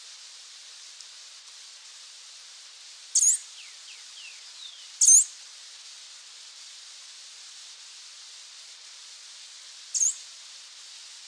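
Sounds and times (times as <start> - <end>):
soft background hiss: 0.0 - 11.2
bird chirping: 3.2 - 5.3, 10.0 - 10.2.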